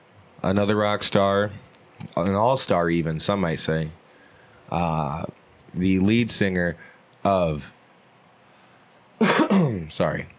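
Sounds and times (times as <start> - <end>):
speech: 0.4 - 4.0, 4.7 - 7.8, 9.9 - 10.3
person coughing: 9.2 - 9.9.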